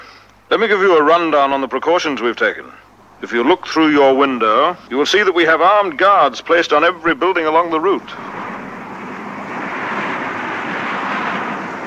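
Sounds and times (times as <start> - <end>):
speech: 0.5 - 8.4
helicopter flying overhead: 2.7 - 11.8.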